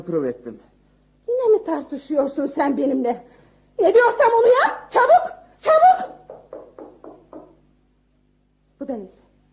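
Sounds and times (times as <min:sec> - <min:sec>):
speech: 0:00.0 - 0:00.7, 0:01.6 - 0:06.2, 0:08.9 - 0:09.2
firm knocks on a wooden door: 0:06.1 - 0:07.6.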